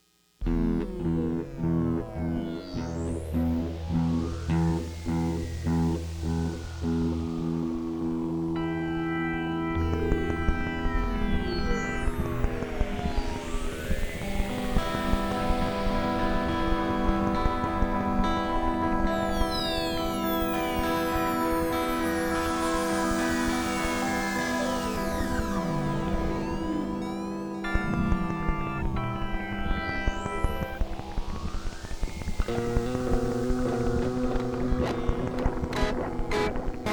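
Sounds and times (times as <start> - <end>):
audio feedback: 0.4 - 36.9.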